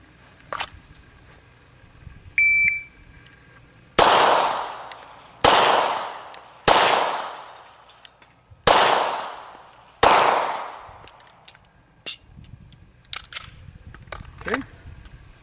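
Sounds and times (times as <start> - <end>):
short electronic beep from a shot timer: 2.4 - 3.0
sharp gunshots with loud crack and ringing echo in a practical accuracy section: 4.0 - 7.6, 8.6 - 11.0.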